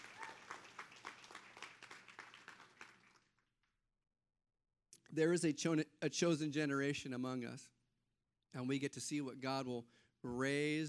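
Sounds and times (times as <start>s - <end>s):
congregation applauding in a reverberant room: 0.0s - 3.4s
speech: 5.1s - 7.8s, 8.5s - 10.8s.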